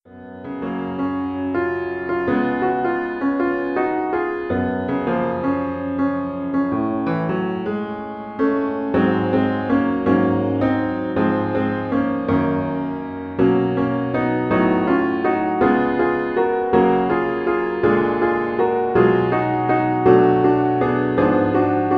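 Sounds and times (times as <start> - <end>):
advanced piano solo: 0.0 - 21.9.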